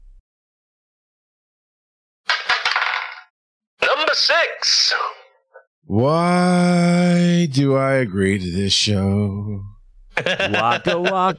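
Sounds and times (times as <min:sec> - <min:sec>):
dice being rolled: 0:02.3 - 0:03.2
speech: 0:04.2 - 0:05.2, 0:05.9 - 0:11.3
laughter: 0:10.2 - 0:11.3.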